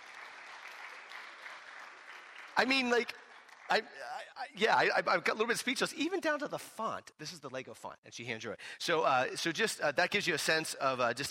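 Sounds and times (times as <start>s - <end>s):
audience applause: 0.0s - 4.0s
speech: 2.6s - 11.2s.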